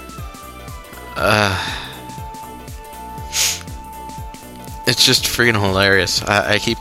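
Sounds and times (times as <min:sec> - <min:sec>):
speech: 0:01.2 - 0:01.8, 0:04.9 - 0:06.7
voiced grunt: 0:01.2 - 0:01.9
sniffle through a stuffy nose from a cold: 0:03.3 - 0:03.6.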